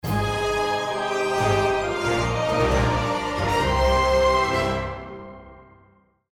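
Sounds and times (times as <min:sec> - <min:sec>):
win theme jingle: 0:00.0 - 0:04.9.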